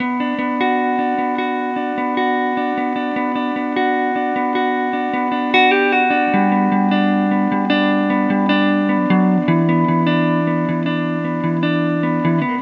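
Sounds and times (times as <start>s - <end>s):
guitar hiss: 0.0s - 12.6s.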